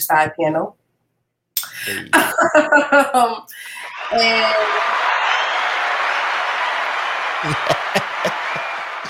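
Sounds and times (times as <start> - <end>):
speech: 0.0 - 0.8, 1.8 - 5.1, 7.4 - 7.8
laughter: 1.8 - 9.0
studio side panel cheering: 3.6 - 9.0
loud whoop: 3.8 - 9.0
studio side panel applauding: 3.8 - 9.0.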